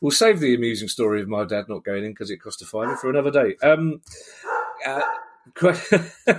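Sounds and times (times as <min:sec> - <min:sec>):
speech: 0:00.0 - 0:06.3
dog barking at the postman: 0:02.8 - 0:03.2, 0:04.4 - 0:05.4
laughter: 0:04.2 - 0:06.3.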